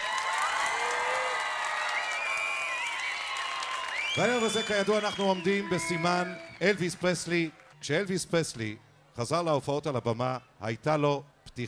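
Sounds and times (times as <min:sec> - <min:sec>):
crowd of thousands clapping at outdoor concert in Haifa: 0:00.0 - 0:07.9
crowd whoops and whistles at outdoor concert in Haifa: 0:01.2 - 0:06.8
speech: 0:04.2 - 0:11.6.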